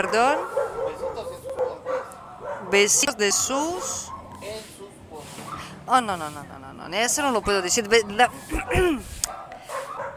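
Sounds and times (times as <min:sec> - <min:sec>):
speech: 0:00.0 - 0:00.6, 0:02.7 - 0:04.7, 0:05.9 - 0:09.4
dogs fighting in the street: 0:00.0 - 0:04.4, 0:07.8 - 0:10.1.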